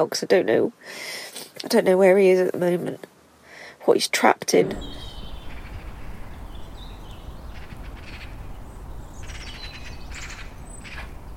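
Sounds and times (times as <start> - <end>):
speech: 0.0 - 3.1, 3.9 - 5.0
steady low outdoor rumble: 4.5 - 11.3
birds chirping in a garden on a sunny day: 4.6 - 11.3.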